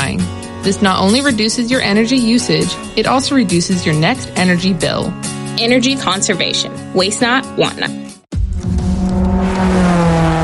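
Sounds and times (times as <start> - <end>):
speech: 0.7 - 8.0
race cars roaring past on the final lap around a track: 9.0 - 10.4.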